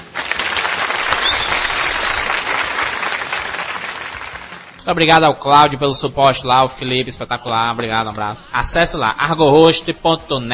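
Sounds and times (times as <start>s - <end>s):
crowd applause: 0.0s - 4.8s
speech: 4.8s - 10.5s.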